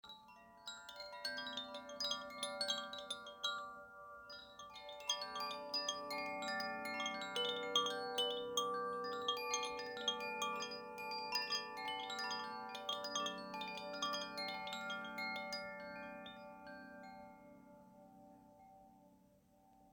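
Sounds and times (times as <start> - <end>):
Koshi chimes, fire chime: 0.0 - 19.9.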